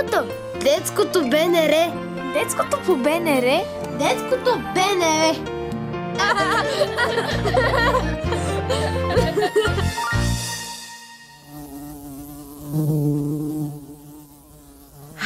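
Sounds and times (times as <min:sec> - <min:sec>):
speech: 0:00.2 - 0:05.5, 0:06.2 - 0:10.2, 0:12.8 - 0:13.2
laughter: 0:06.1 - 0:10.1
bees buzzing: 0:11.3 - 0:15.2.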